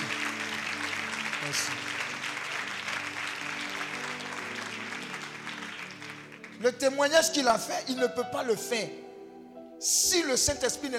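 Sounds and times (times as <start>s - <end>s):
congregation applauding at a church service: 0.0s - 8.0s
speech: 1.4s - 2.0s, 6.6s - 9.0s, 9.8s - 10.9s.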